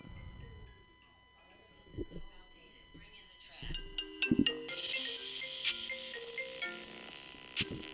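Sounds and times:
phone ringtone bright electronic melody: 0:03.7 - 0:07.9.

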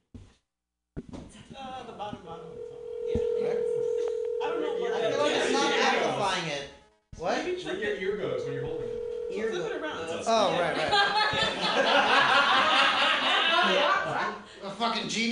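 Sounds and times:
speech: 0:01.0 - 0:03.7, 0:04.5 - 0:13.0, 0:13.6 - 0:15.3
telephone dial tone during a phone call: 0:02.6 - 0:05.0, 0:08.2 - 0:09.6
laughter: 0:10.8 - 0:14.4.

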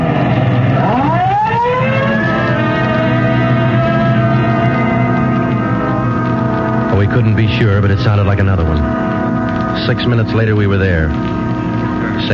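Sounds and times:
low engine rumble: 0:00.0 - 0:12.3
police car siren wailing running Code 3: 0:00.0 - 0:12.3
speech: 0:07.3 - 0:09.1, 0:09.8 - 0:11.5.

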